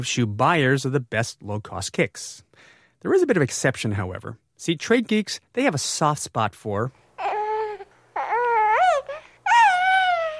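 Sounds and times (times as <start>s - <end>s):
speech: 0.0s - 7.0s
baby whimpering and crying: 7.2s - 10.3s.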